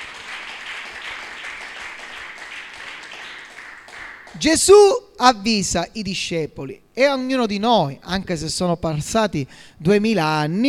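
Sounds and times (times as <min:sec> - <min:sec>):
audience applauding: 0:00.0 - 0:04.4
speech: 0:04.3 - 0:10.6.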